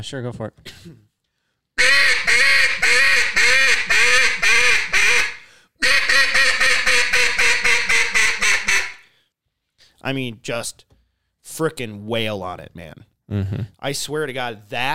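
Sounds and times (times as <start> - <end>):
speech: 0.0 - 1.1, 10.0 - 14.9
duck call blown as a greeting call: 1.8 - 9.1.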